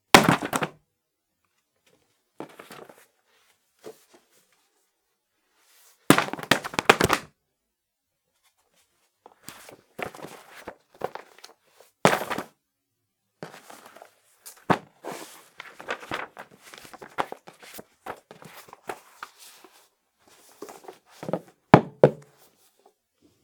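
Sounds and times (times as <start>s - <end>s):
thin books dropped together: 0.1s - 0.8s, 2.4s - 3.1s, 6.1s - 7.3s, 9.4s - 12.6s, 13.4s - 19.4s, 20.4s - 22.4s.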